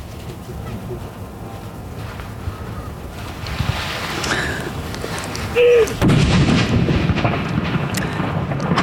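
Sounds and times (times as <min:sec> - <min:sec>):
outdoor rumble: 0:00.0 - 0:08.8
steady wind: 0:00.0 - 0:08.8
cannon salute fired at a fortress for a royal succession: 0:05.9 - 0:08.8.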